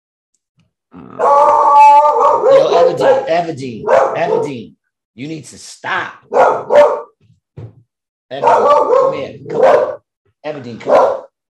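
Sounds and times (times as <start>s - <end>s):
speech: 0.9s - 1.4s, 2.8s - 7.0s, 8.3s - 11.2s
dog barking and yipping: 1.2s - 4.6s, 6.3s - 7.2s, 8.3s - 10.0s, 10.8s - 11.3s.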